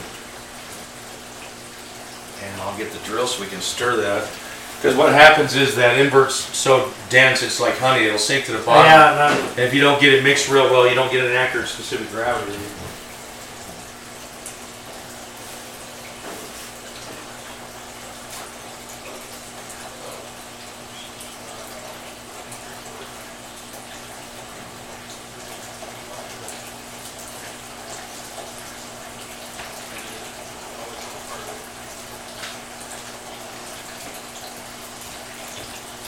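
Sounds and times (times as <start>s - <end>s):
liquid pumped from a drum into a 300-gallon wine fermenter: 0.0s - 36.0s
low constant pump hum: 0.0s - 36.0s
speech: 2.4s - 13.0s.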